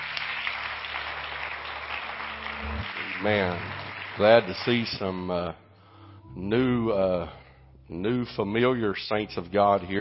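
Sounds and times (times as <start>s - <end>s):
audience applause for visiting guests: 0.0s - 5.1s
speech: 3.2s - 5.6s, 6.3s - 10.0s.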